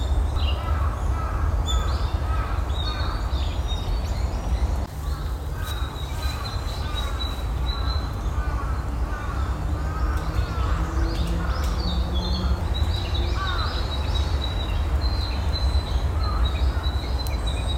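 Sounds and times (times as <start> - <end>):
birds calling in a park in the morning: 0.0 - 17.7
harsh crow-like bird calls: 0.5 - 3.3, 4.9 - 11.8.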